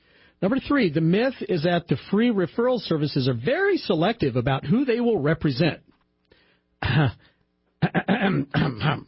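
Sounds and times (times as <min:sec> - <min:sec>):
speech: 0:00.4 - 0:05.9, 0:06.8 - 0:09.0
person clearing throat: 0:06.8 - 0:09.0.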